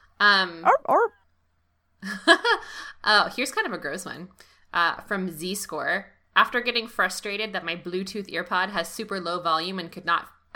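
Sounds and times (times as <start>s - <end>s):
speech: 0.2s - 1.2s, 2.0s - 10.5s
dog barking: 0.6s - 1.1s.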